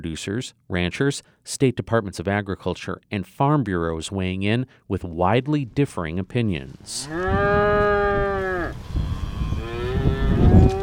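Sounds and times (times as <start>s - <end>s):
speech: 0.0s - 8.5s
cows mooing on a farm in Southwest Missouri: 7.0s - 10.8s
strong wind buffeting outdoors: 7.1s - 10.8s.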